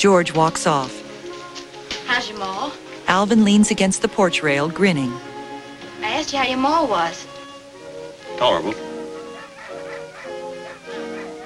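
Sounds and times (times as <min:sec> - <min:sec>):
speech: 0:00.0 - 0:01.0, 0:02.2 - 0:05.3, 0:06.2 - 0:07.3, 0:08.4 - 0:08.9
two hound dogs baying on a fox hunt: 0:08.8 - 0:11.4.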